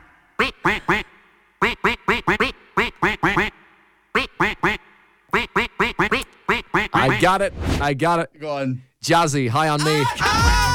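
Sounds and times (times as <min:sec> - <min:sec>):
duck-like quacking voice sounding out a rhythmic tune: 0:00.4 - 0:07.3
speech: 0:00.6 - 0:01.1, 0:07.2 - 0:10.6.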